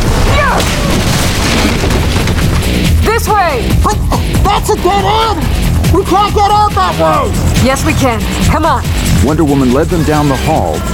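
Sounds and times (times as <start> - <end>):
burning timber crashing down from the floor above in a raging fire: 0.0 - 3.0
speech: 3.3 - 10.9.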